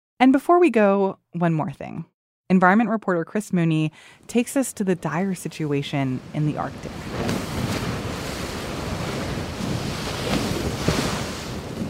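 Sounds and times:
speech: 0:00.2 - 0:07.4
churning water: 0:05.1 - 0:11.8
Canadian research icebreaker cutting through Arctic sea ice in the Northwest Passage: 0:06.0 - 0:11.8
wind: 0:06.8 - 0:11.8.

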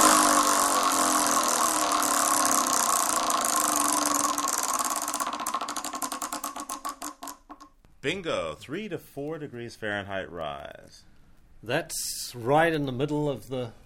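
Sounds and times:
prize wheel spinning with rattling clicker: 0:00.2 - 0:07.4
speech: 0:08.0 - 0:13.8.

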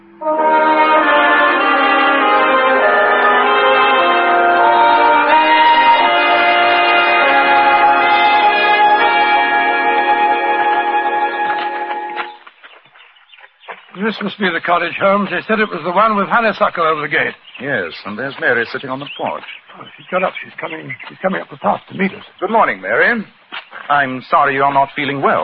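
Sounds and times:
heavy funeral church bell tolling: 0:00.0 - 0:12.4
speech: 0:00.2 - 0:00.4, 0:14.2 - 0:25.4.

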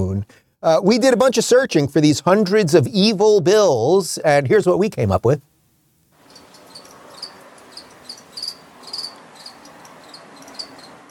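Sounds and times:
speech: 0:00.0 - 0:05.5
soft steady hiss: 0:00.0 - 0:11.0
crickets chirping: 0:06.2 - 0:11.0.

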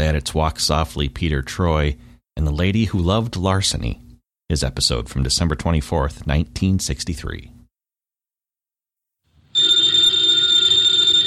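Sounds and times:
speech: 0:00.0 - 0:07.6
telephone bell ringing: 0:09.5 - 0:11.2.

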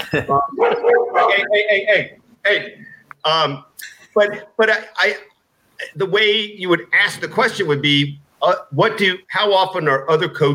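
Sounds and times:
speech: 0:00.1 - 0:10.5
dog barking and yelping: 0:00.5 - 0:01.5.

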